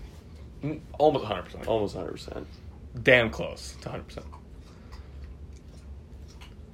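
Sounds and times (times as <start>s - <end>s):
low steady hum: 0.0s - 6.7s
speech: 0.6s - 4.4s
dog chewing and munching: 1.4s - 6.7s.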